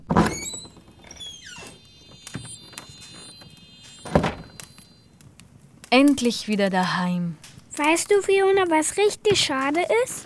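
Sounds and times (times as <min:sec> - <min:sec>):
door squeaking and creaking as it swings: 0:00.0 - 0:05.1
speech: 0:05.9 - 0:10.2.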